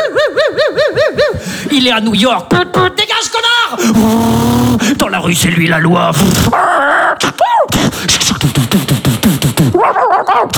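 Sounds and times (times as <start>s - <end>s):
laughter: 0.0s - 1.5s, 9.7s - 10.5s
speech: 1.8s - 10.5s
dog yelping and barking: 9.8s - 10.5s.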